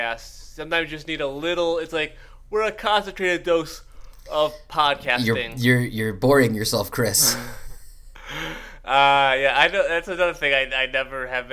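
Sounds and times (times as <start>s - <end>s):
speech: 0.0s - 7.6s, 8.3s - 11.5s
person yawning: 7.2s - 8.5s.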